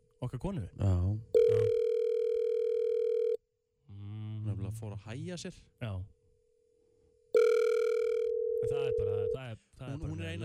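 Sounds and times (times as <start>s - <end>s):
speech: 0.2s - 1.8s, 4.5s - 6.2s, 8.6s - 10.4s
outgoing phone call ringing tone: 1.4s - 3.4s, 7.4s - 9.4s.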